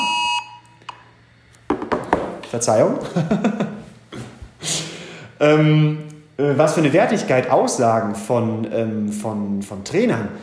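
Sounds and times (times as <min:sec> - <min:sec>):
nationwide emergency alert tone from a phone: 0:00.0 - 0:00.7
speech: 0:02.5 - 0:03.7, 0:05.4 - 0:10.4
laughter: 0:03.0 - 0:04.3.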